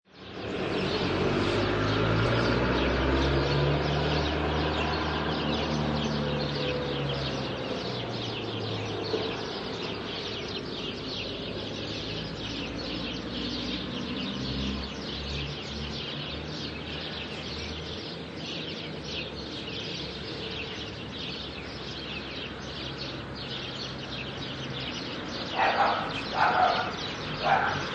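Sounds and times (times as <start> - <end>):
rural ambience: 0.1 - 27.9.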